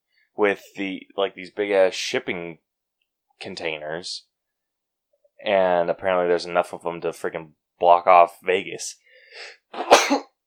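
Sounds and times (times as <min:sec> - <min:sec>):
speech: 0:00.4 - 0:02.6, 0:03.4 - 0:04.3, 0:05.4 - 0:10.3
breathy inhale: 0:09.0 - 0:09.6
person sneezing: 0:09.7 - 0:10.3.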